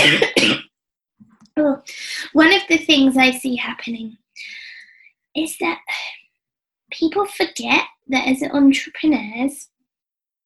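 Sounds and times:
person coughing harshly: 0.0 - 0.7
speech: 1.6 - 4.6, 5.3 - 6.2, 6.9 - 9.7.

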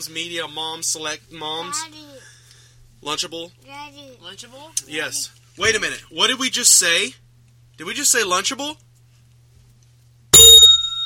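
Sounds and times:
speech: 0.0 - 2.3, 3.0 - 7.2, 7.8 - 8.9
bell ringing: 10.4 - 11.0.

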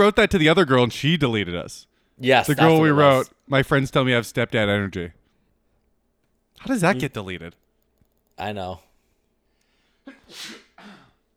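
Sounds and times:
speech: 0.0 - 5.2, 6.6 - 7.6, 8.4 - 8.9, 10.3 - 10.6
single sharp sneeze with inhaled buildup: 10.1 - 11.2.

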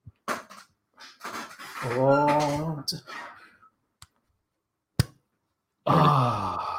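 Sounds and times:
person speaking: 1.8 - 3.1
person grunting with effort: 5.8 - 6.7.

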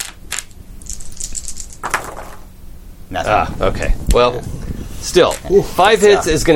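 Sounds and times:
dice rolling across a hard tabletop: 0.0 - 2.4
speech: 3.1 - 6.5.

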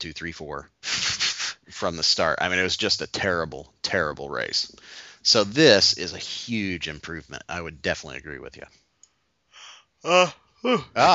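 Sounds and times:
speech: 0.0 - 0.8, 1.7 - 8.8, 10.0 - 11.1
person yawning: 9.6 - 11.1.

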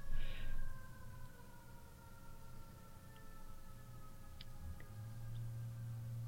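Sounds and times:
passing sirens wailing faintly: 0.0 - 6.2.

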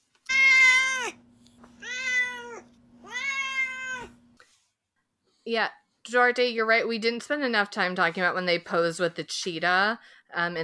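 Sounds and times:
cat meowing: 0.3 - 1.2, 1.8 - 4.2
speech: 5.5 - 10.6.

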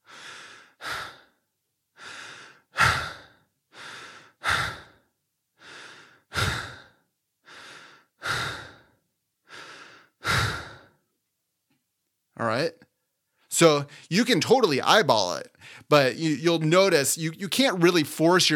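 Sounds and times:
steady rapid breathing at 20 breaths per minute: 0.0 - 11.0, 13.8 - 14.2, 15.5 - 16.0
speech: 12.4 - 12.9, 13.5 - 18.5.

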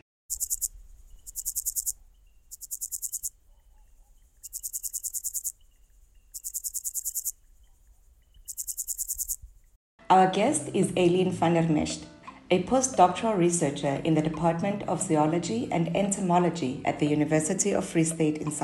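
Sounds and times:
bush crickets calling in buzzing bursts: 0.3 - 9.8
speech: 10.1 - 18.6.

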